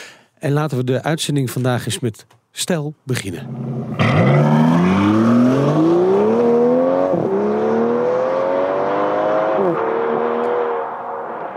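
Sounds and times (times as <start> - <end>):
speech: 0.4 - 4.5
Aston Martin DB11 engine accelerating through the gears: 3.4 - 11.5.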